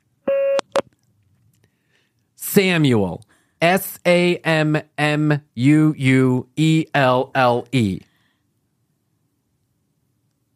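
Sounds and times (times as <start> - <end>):
answering machine beep: 0.3 - 0.8
speech: 2.6 - 8.1.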